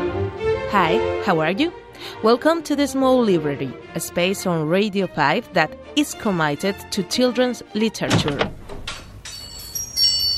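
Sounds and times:
speech: 0.7s - 8.6s
door opening with quick sliding swishes: 8.0s - 9.8s
thin high ringing tone: 9.2s - 10.3s.

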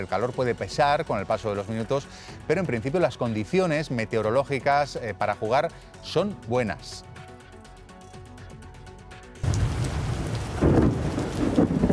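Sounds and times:
speech: 0.0s - 7.1s
deep rolling thunder: 9.4s - 11.9s
steady heavy rain in a thunderstorm: 9.4s - 11.9s.

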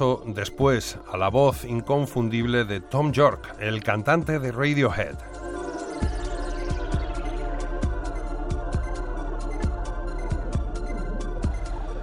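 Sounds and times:
speech: 0.0s - 5.4s
deep thudding electronic percussion in a song remix: 5.2s - 12.0s.

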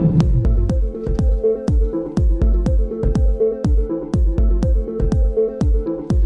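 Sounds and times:
looped synth-pop music sample with punchy beats, bass and synth tones: 0.0s - 6.2s.

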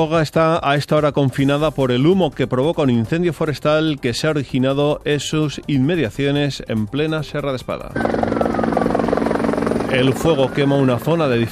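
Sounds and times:
speech: 0.0s - 8.5s, 9.9s - 11.4s
helicopter rotor beating ferrying firefighting crews to a forest fire near Toga Spain: 8.0s - 11.4s.

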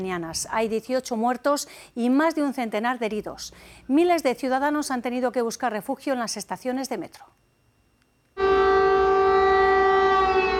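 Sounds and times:
speech: 0.0s - 7.4s
air raid siren: 8.4s - 10.5s.

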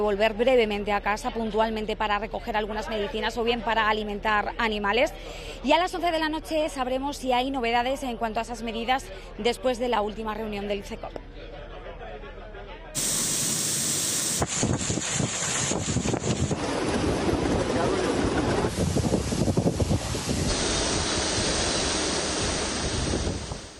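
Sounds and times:
speech: 0.0s - 11.5s
bursts of spray and rushing water: 13.0s - 23.7s
dense hissing sheets of heavy rain in a violent storm: 13.0s - 23.7s
strong gusting wind in a violent storm: 14.4s - 23.7s.

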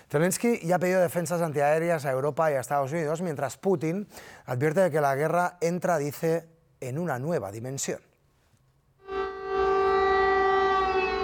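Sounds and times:
speech: 0.1s - 8.1s
air raid siren wailing: 9.0s - 11.2s.

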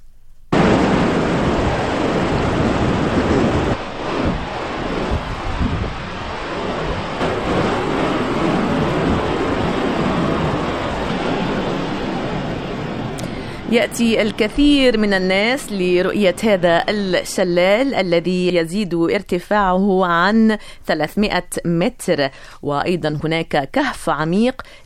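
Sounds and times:
river rushing: 0.6s - 15.0s
speech: 13.7s - 24.8s.

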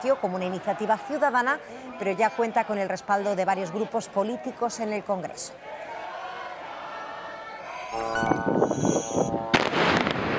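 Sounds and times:
speech: 0.0s - 5.9s
heavy bombing explosions: 8.7s - 10.3s
sharp loud blast: 8.7s - 10.3s.

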